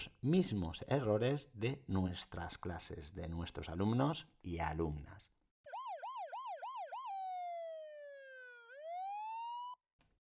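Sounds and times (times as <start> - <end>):
speech: 0.0 - 5.4
electronic siren yelping and wailing: 5.7 - 9.8.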